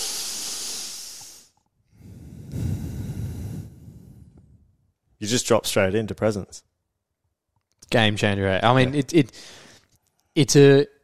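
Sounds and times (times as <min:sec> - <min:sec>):
slow airy breathing in through the nose: 0:00.0 - 0:04.7
speech: 0:05.2 - 0:06.7, 0:07.9 - 0:09.6, 0:10.4 - 0:11.0.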